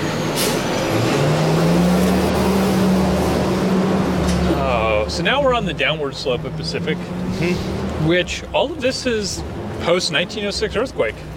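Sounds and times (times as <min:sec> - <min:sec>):
big truck rumbling past on the street: 0:00.0 - 0:08.5
truck air brakes hissing: 0:00.2 - 0:00.8
speech: 0:05.1 - 0:11.3.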